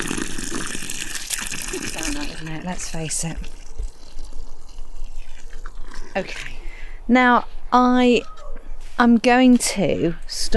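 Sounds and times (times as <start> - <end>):
water poured into a planting hole: 0.0 - 6.6
speech: 2.4 - 3.6, 6.2 - 8.4, 9.0 - 10.5.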